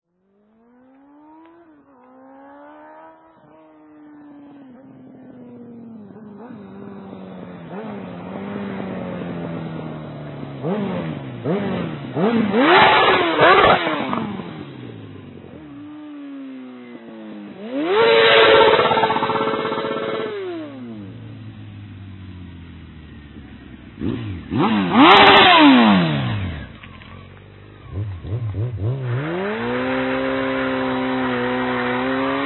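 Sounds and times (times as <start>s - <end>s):
motorcycle burnouts until the tyre bursts: 0.2s - 32.4s.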